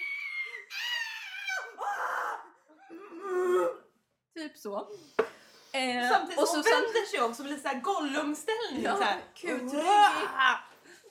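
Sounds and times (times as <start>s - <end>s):
voice imitating a high-pitched shriek turning into a growling roar: 0.0s - 3.9s
speech: 4.4s - 10.6s.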